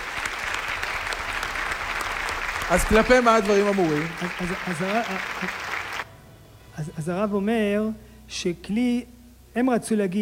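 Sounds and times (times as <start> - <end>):
audience applause at a lecture on religious law: 0.0 - 6.1
speech: 2.7 - 5.7, 6.8 - 10.1.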